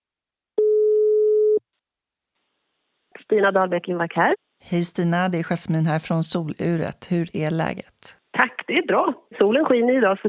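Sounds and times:
steady telephone ringback tone while placing a call: 0.6 - 1.6
speech: 3.3 - 10.2.

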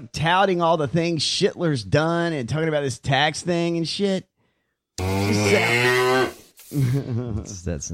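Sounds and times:
speech: 0.0 - 4.3, 5.0 - 6.0, 6.7 - 7.9
cow mooing loudly: 5.0 - 6.4.

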